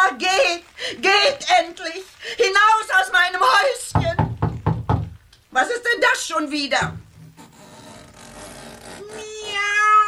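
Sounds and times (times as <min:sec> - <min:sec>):
speech: 0:00.1 - 0:03.7, 0:05.6 - 0:07.0
cat meowing: 0:09.0 - 0:10.0.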